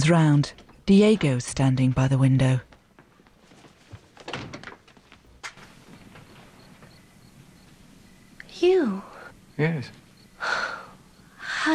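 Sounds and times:
speech: 0.0s - 2.7s, 8.7s - 10.0s
door shut quickly with dull thunks: 0.0s - 3.0s, 3.9s - 7.0s
faint hiss: 0.0s - 11.7s.

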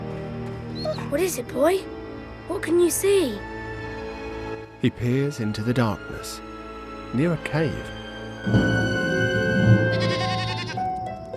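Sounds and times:
speech: 1.1s - 3.5s, 4.8s - 6.5s, 7.1s - 8.8s
lamb bleating in the dark near a cave: 9.9s - 10.9s.

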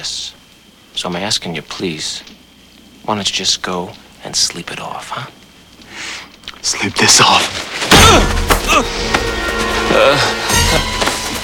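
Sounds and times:
speech: 0.0s - 0.4s, 1.0s - 2.4s, 3.1s - 5.4s, 6.6s - 11.0s
heavy punches landing in a fight: 7.7s - 9.6s.

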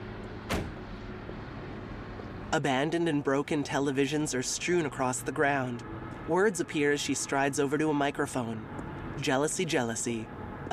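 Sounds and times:
SUV idling rumble: 0.0s - 10.7s
SUV door opening in a parking lot under concrete overpasses: 0.5s - 0.9s
speech: 2.5s - 10.4s.

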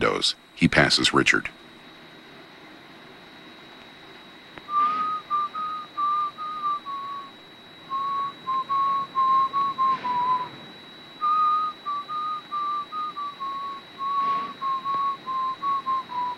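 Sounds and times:
speech: 0.0s - 1.6s
faint hum: 0.0s - 16.3s
person whistling a tune: 4.7s - 7.3s, 7.9s - 10.5s, 11.2s - 16.3s.

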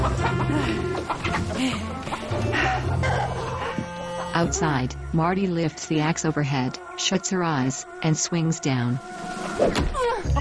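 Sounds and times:
chickens clucking and squawking in a chicken coop: 0.0s - 4.5s
speech: 1.6s - 2.1s, 4.4s - 10.3s.

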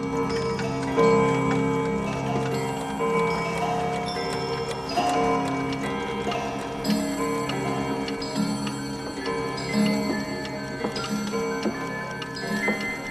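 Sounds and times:
roomful of clocks ticking: 0.0s - 13.0s.

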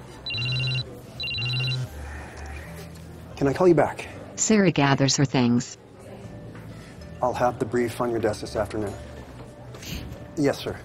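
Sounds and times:
phone on a table ringing electronically: 0.2s - 1.9s
speech: 3.4s - 5.8s, 7.2s - 9.1s, 10.4s - 10.8s.

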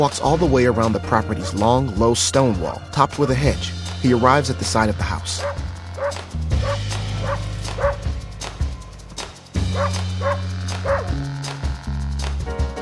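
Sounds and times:
speech: 0.0s - 6.2s
low sustained musical drone: 0.2s - 12.4s
dog barking: 5.4s - 8.0s, 9.7s - 11.2s.

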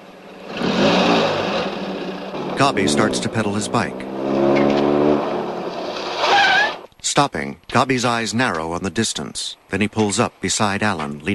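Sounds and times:
car engine revving as the car drives off: 0.0s - 6.9s
speech: 2.6s - 4.6s, 7.2s - 11.3s.

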